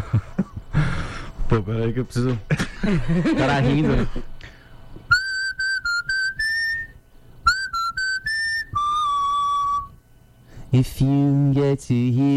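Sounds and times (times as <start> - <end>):
speech: 1.5 - 4.3, 10.7 - 12.3
laughter: 2.5 - 4.3
person whistling a song melody: 5.1 - 10.0.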